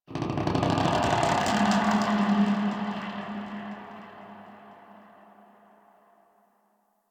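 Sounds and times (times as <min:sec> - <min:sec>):
exterior space rings ambience: 0:00.8 - 0:06.2.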